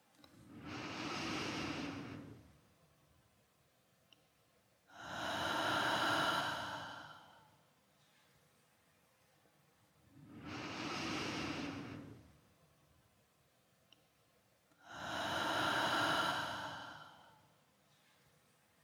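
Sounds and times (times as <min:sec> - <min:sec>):
slow deep breathing: 0:00.3 - 0:02.7, 0:04.9 - 0:07.7, 0:10.1 - 0:12.6, 0:14.7 - 0:18.1.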